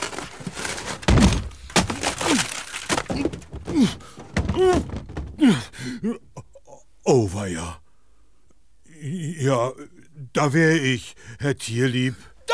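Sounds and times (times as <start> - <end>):
wooden door of small house smashed in by elephant: 0.0 - 5.7
scattered knocks: 3.0 - 5.5
speech: 7.3 - 7.8, 9.4 - 12.3.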